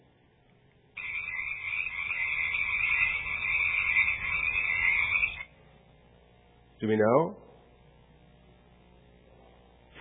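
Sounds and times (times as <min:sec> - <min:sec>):
chorus of frogs croaking: 0:01.0 - 0:05.5
speech: 0:06.8 - 0:07.4.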